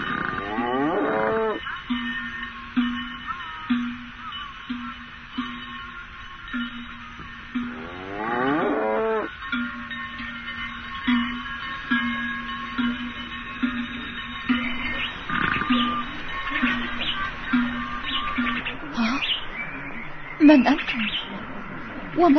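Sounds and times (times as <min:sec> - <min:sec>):
several birds twittering together over water in sand: 0:00.0 - 0:22.3
steady low hum: 0:00.0 - 0:22.3
speech: 0:20.5 - 0:21.1, 0:22.2 - 0:22.3.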